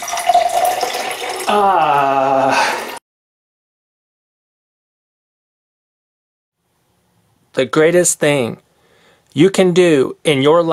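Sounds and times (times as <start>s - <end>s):
water draining out of a container in a splashing stream: 0.0s - 1.5s
speech: 1.5s - 2.5s, 7.6s - 8.6s, 9.3s - 10.7s.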